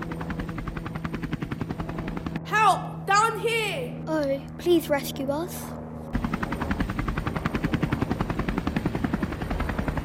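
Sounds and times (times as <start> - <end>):
helicopter rotor thumping: 0.0 - 3.6, 5.8 - 10.0
speech: 4.2 - 5.8.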